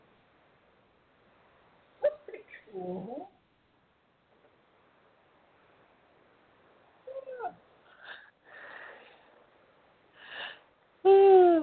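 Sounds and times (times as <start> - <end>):
person yawning with a groaning exhale: 11.1 - 11.6.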